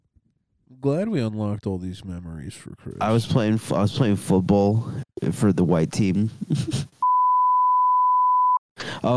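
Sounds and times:
speech: 0:00.7 - 0:07.0
loud steady high-pitched censor bleep: 0:07.0 - 0:08.6.

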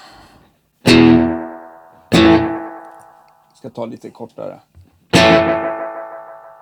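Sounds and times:
electric guitar hits with decaying delay repeats: 0:00.9 - 0:03.2, 0:05.2 - 0:06.6
speech: 0:03.6 - 0:04.7.

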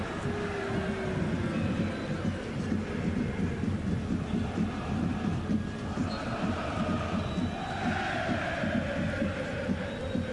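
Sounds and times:
football fans chanting and singing in a stadium: 0:00.0 - 0:10.3.

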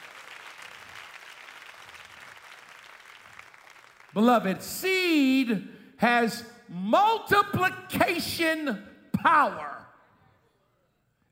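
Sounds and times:
crowd applause of many hands clapping: 0:00.0 - 0:04.7
speech: 0:04.1 - 0:09.7.

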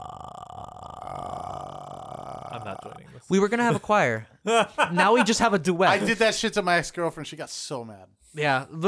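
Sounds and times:
voice imitating a ghostly croaking death rattle: 0:00.0 - 0:03.2
speech: 0:02.5 - 0:08.8.

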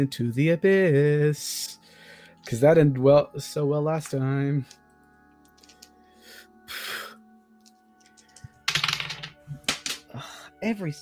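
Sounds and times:
speech: 0:00.0 - 0:04.8, 0:10.2 - 0:10.9
dice clattering on a hard tabletop: 0:08.0 - 0:10.1.

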